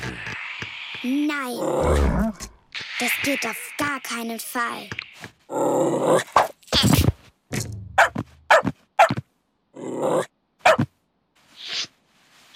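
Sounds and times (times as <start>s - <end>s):
speech: 1.0s - 2.4s, 3.0s - 6.3s
dog growling: 1.6s - 2.6s
dog barking: 8.0s - 9.2s, 10.6s - 10.9s.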